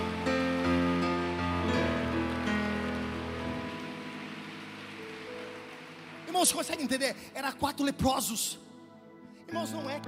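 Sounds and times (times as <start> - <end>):
sustained keyboard or organ chords: 0.0 - 4.6
crowd applauding: 0.0 - 7.8
speech: 6.4 - 8.7, 9.5 - 10.0.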